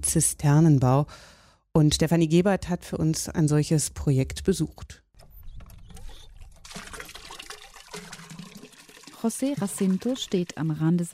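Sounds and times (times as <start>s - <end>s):
speech: 0.0s - 5.0s, 9.2s - 11.1s
water gushing from a hand pump into a bucket: 6.0s - 11.1s.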